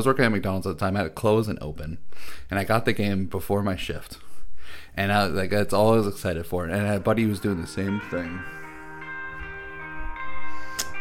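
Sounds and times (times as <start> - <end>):
speech: 0.0 - 8.6
phone alarm playing a song: 6.8 - 10.9
sharp click: 10.8 - 10.9.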